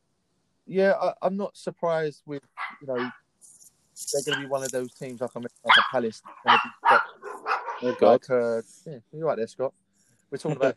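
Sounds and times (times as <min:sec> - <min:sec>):
speech: 0:00.7 - 0:03.2, 0:04.0 - 0:07.0, 0:07.8 - 0:10.7
dog barking with short sharp yelps: 0:02.6 - 0:03.2, 0:04.2 - 0:04.8, 0:05.6 - 0:08.1.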